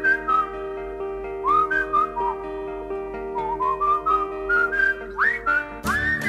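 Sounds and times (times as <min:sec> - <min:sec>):
person whistling a bright wandering melody: 0:00.0 - 0:00.6, 0:01.4 - 0:02.4, 0:03.3 - 0:06.2.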